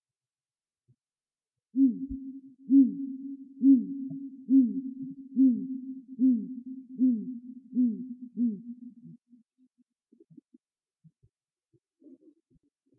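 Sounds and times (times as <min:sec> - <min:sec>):
great grey owl deep hoots in Finland: 0:01.8 - 0:09.5.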